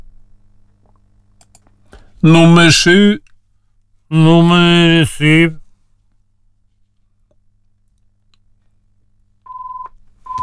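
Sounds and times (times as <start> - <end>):
speech: 2.2 - 3.2, 4.1 - 5.6
telephone ringing with steady electronic tone: 9.5 - 10.4.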